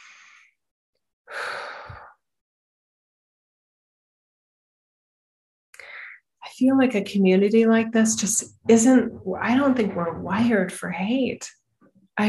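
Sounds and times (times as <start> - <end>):
deep breath: 1.3 - 2.2, 5.8 - 6.2
speech: 6.6 - 11.6.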